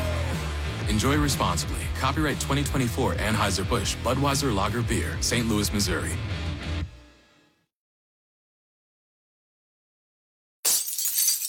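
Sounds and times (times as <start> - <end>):
speech: 0.9 - 6.5
car windshield glass cracking: 10.7 - 11.4
car windshield glass shattering: 10.7 - 11.4.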